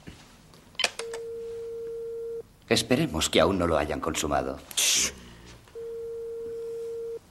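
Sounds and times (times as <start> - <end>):
telephone ringing tone on the line: 1.1 - 2.4, 5.8 - 7.2
speech: 2.7 - 5.1.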